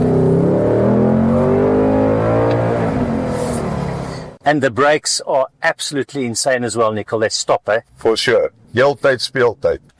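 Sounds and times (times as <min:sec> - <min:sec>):
Ford Mustang engine revving: 0:00.0 - 0:04.4
speech: 0:04.5 - 0:09.9.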